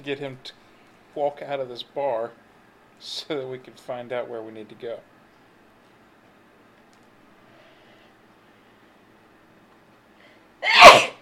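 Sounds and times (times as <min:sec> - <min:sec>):
speech: 0:00.0 - 0:00.6, 0:01.2 - 0:02.4, 0:03.0 - 0:05.1
person sneezing: 0:10.6 - 0:11.2.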